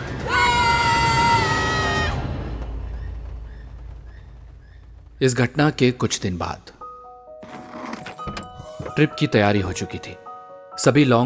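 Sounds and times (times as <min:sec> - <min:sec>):
two people screaming in a forest: 0:00.0 - 0:02.6
low rumble: 0:01.0 - 0:06.8
speech: 0:05.2 - 0:06.8, 0:09.0 - 0:10.2, 0:10.8 - 0:11.2.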